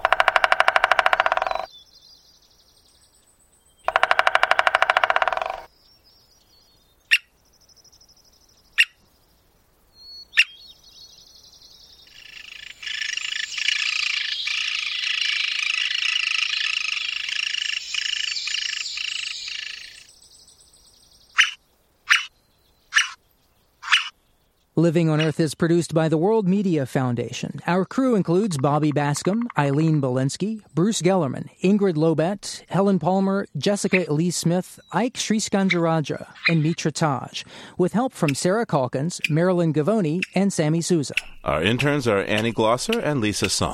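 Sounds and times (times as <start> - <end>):
American three-toed woodpecker drumming: 0.0 - 1.7, 3.8 - 5.7, 12.1 - 20.1, 21.4 - 22.3, 22.9 - 23.2, 23.8 - 24.1, 25.1 - 25.4, 28.0 - 30.1, 32.8 - 43.7
American three-toed woodpecker squeaks: 0.0 - 1.7, 3.9 - 5.7, 10.3 - 10.6, 12.2 - 20.1, 21.4 - 22.3, 22.9 - 23.2, 23.8 - 24.1, 25.2 - 25.4, 33.8 - 34.2, 34.9 - 36.9, 40.1 - 40.5, 41.1 - 43.6
sharp knocks: 0.0 - 1.7, 3.9 - 5.7
speech: 24.8 - 43.7.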